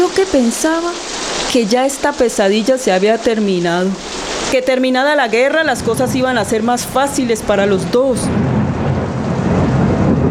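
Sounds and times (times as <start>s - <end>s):
heavy rain: 0.0s - 10.3s
speech: 0.1s - 8.6s
thunder rumbling during a rainstorm: 4.3s - 10.3s.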